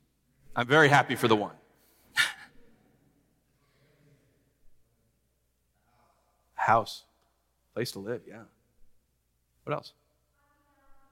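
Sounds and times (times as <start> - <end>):
speech: 0.6 - 1.6, 6.7 - 7.1, 7.8 - 8.6, 9.6 - 10.0
dog barking: 2.2 - 2.5.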